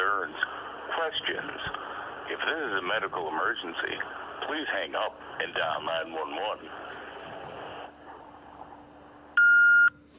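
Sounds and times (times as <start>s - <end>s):
low noise: 0.0s - 10.1s
speech: 0.2s - 7.0s
answering machine beep before leaving a message: 9.4s - 10.0s.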